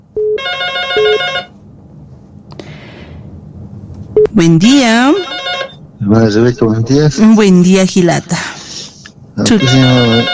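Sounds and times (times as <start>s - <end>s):
cell phone ringing with electronic ringtone: 0.2s - 1.6s, 5.1s - 5.8s, 9.5s - 10.3s
speech: 4.4s - 5.5s, 6.1s - 8.5s, 9.4s - 10.3s.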